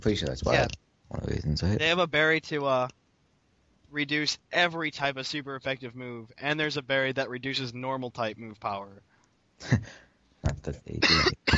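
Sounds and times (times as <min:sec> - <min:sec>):
speech: 0:00.0 - 0:03.0, 0:03.9 - 0:11.5
harsh raspy hacking coughs: 0:11.0 - 0:11.5.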